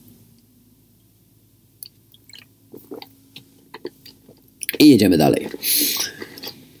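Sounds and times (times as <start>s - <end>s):
low room hum: 0.0s - 6.7s
sipping water: 2.2s - 3.1s, 3.7s - 6.7s
speech: 4.8s - 5.8s.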